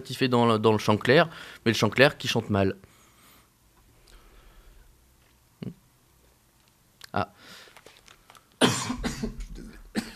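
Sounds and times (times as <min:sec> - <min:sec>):
speech: 0:00.0 - 0:02.9, 0:07.1 - 0:07.6
person coughing with rough throaty coughs: 0:08.6 - 0:10.1.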